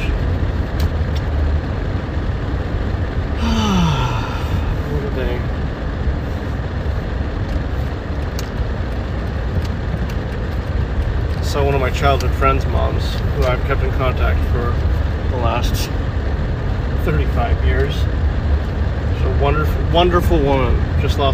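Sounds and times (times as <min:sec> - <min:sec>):
interior road noise from a moving car: 0:00.0 - 0:21.3
speech: 0:12.0 - 0:16.1, 0:17.0 - 0:18.2, 0:19.4 - 0:21.3.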